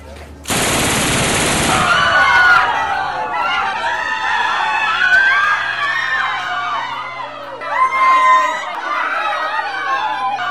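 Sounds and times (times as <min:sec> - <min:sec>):
heavy-calibre gunfire burst inside an underground city: 0:00.5 - 0:03.1
clamour of agitated voices: 0:01.3 - 0:10.4.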